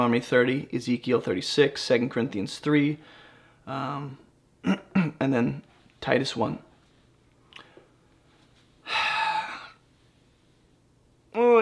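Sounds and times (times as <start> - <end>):
speech: 0.0 - 6.7
exhausted person yawning: 8.8 - 9.8.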